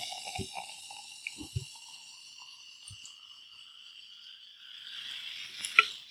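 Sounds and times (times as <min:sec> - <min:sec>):
smoothie-style ale poured into a glass: 0:00.0 - 0:03.0
ale fizzing hiss: 0:00.0 - 0:06.0.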